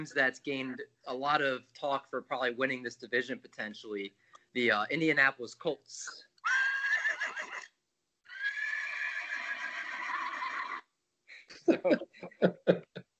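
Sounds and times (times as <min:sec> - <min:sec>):
speech: 0:00.0 - 0:06.6, 0:11.7 - 0:13.0
person imitating a horse neigh: 0:08.3 - 0:10.8
laughter: 0:11.5 - 0:13.0.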